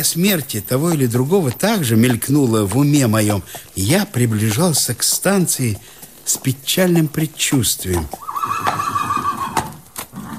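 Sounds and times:
speech: 0.0 - 9.0
horse hoof clops at a post house: 0.0 - 10.3
horse whinnying at a post house: 8.1 - 10.3.

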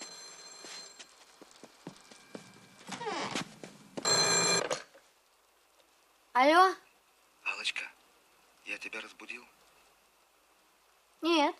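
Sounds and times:
telephone bell ringing at night in a bedroom: 0.0 - 1.2, 4.0 - 4.8
rain falling outside: 0.0 - 4.0, 5.0 - 11.5
speech: 6.4 - 6.8, 8.8 - 9.6.

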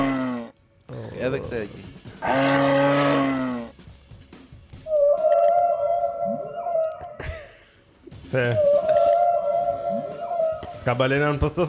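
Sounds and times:
speech: 1.2 - 3.3, 8.3 - 8.8, 10.8 - 11.6
zebra call from an animal sound board: 2.2 - 3.7, 4.9 - 7.2, 8.5 - 10.9.

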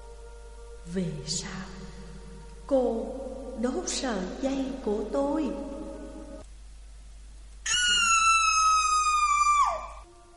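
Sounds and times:
speech: 0.9 - 1.9, 2.7 - 5.7
young woman screaming loudly: 7.7 - 10.0.

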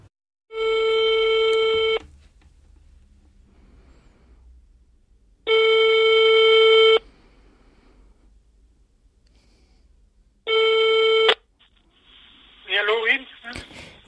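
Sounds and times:
long steady buzzing telephone ring tones: 0.5 - 2.0, 5.5 - 7.0, 10.5 - 11.4
brief voice on the telephone line: 12.6 - 13.7.

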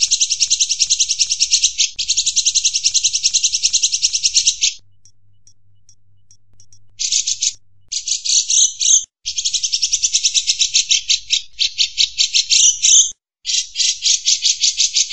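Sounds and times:
faint ticks: 0.0 - 7.6
Van Hasselt's sunbird high rapid buzzy trills: 0.0 - 14.7.

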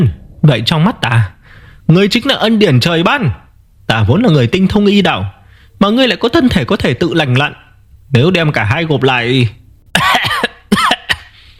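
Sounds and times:
speech: 0.0 - 10.1
man coughing violently and dryly: 9.9 - 11.5.

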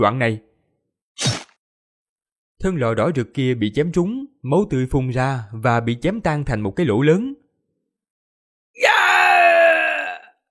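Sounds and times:
speech: 0.0 - 0.5, 2.6 - 7.4
man's loud strained groaning shout: 8.8 - 10.3.

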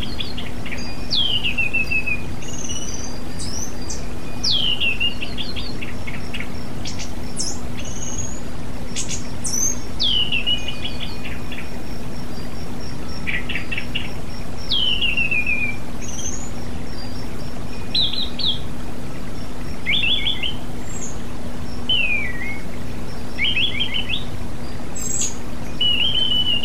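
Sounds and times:
Oriental magpie-robin song with slurred whistles and buzzy notes: 0.0 - 26.6.

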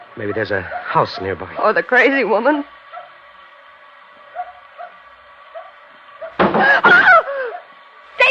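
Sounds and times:
speech: 0.2 - 2.8
something hitting the back of a car: 6.4 - 6.9
laughter: 6.5 - 7.6.

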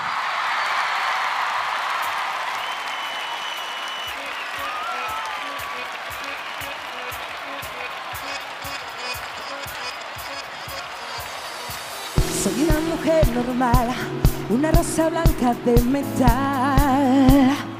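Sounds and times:
concert audience applause at an anniversary show: 0.0 - 12.2
speech: 12.8 - 17.6.

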